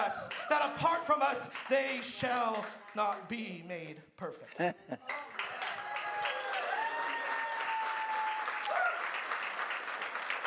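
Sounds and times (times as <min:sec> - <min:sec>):
church audience applauding a pastor: 0:00.0 - 0:03.2, 0:05.0 - 0:10.4
speech: 0:00.0 - 0:05.3
laughter: 0:04.4 - 0:05.4.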